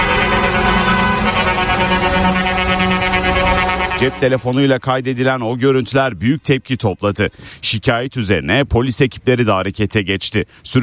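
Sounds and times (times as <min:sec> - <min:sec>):
truck air horns honking in a wedding convoy on a city street: 0:00.0 - 0:04.8
speech: 0:04.0 - 0:10.8.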